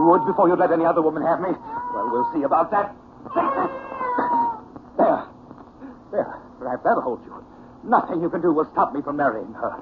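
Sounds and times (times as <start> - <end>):
cat yowling and hissing: 0.0 - 0.8, 1.4 - 4.7
speech: 0.0 - 4.4, 6.1 - 9.8.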